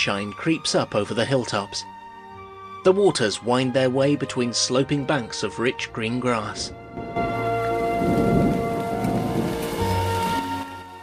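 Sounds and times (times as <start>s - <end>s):
speech: 0.0s - 1.9s, 2.8s - 7.4s
rain falling steadily on a roadway: 7.3s - 11.0s.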